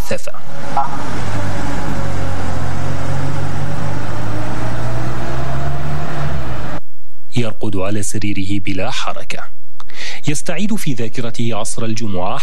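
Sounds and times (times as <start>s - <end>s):
ambulance engine rumble pulling away from hospital emergency entrance: 0.0s - 6.8s
ambulance road noise: 0.0s - 6.8s
speech: 8.0s - 9.5s, 10.3s - 12.4s.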